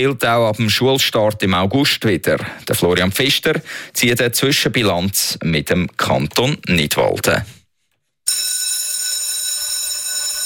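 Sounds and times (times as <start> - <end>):
speech: 0.0 - 7.6
school bell ringing in the canton of Nidwalden, Switzerland: 8.3 - 10.4.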